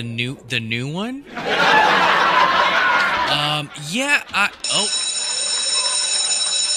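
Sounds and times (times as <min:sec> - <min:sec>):
speech: 0:00.0 - 0:02.4, 0:03.3 - 0:05.0
people chuckling: 0:01.3 - 0:05.6
school bell ringing: 0:04.4 - 0:06.7.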